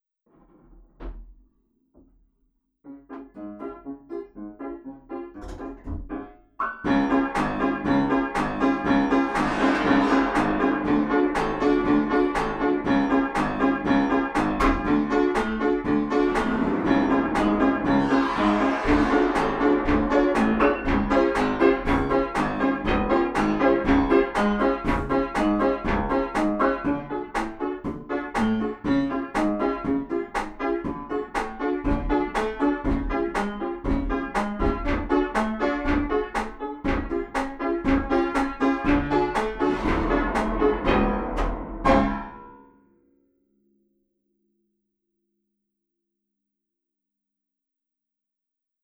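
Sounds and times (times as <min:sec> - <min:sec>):
upright staccato notes: 0:05.4 - 0:42.6.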